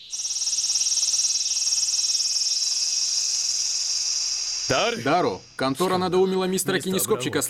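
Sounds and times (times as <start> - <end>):
cicadas droning in a loud high-pitched buzz: 0.0 - 5.6
speech: 4.7 - 7.4.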